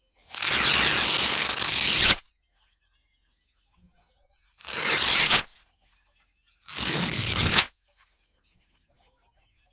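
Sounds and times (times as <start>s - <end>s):
soft paper tear shimmer: 0.3s - 2.2s, 4.6s - 5.5s, 6.7s - 7.7s.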